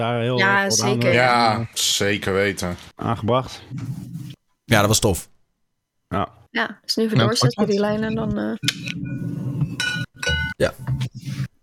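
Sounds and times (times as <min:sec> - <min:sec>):
speech: 0:00.0 - 0:05.3, 0:06.1 - 0:10.0, 0:10.6 - 0:11.5
wine bottle being opened with glassy clinks and rattles: 0:09.8 - 0:10.6.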